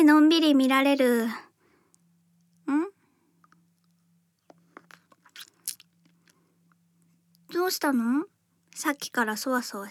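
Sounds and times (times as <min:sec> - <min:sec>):
speech: 0:00.0 - 0:01.5, 0:07.5 - 0:09.8
low steady hum: 0:00.0 - 0:09.8
person eating hard candy in the mouth: 0:03.4 - 0:06.4
small crunches of hard candy: 0:04.4 - 0:06.4
wet mouth clicks: 0:04.4 - 0:06.4.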